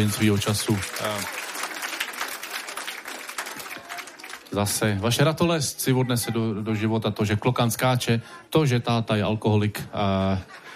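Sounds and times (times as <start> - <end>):
speech: 0.0 - 1.4, 4.5 - 10.7
room full of people clapping: 0.0 - 4.9.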